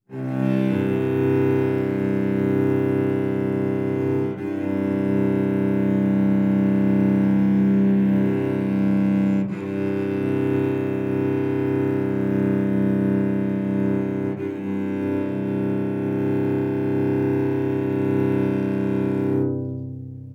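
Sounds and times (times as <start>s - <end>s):
cello: 0.0s - 20.3s.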